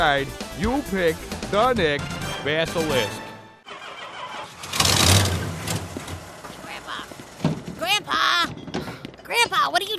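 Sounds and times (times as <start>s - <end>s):
speech: 0.0s - 3.2s
truck engine cranking but failing to start: 3.6s - 9.5s.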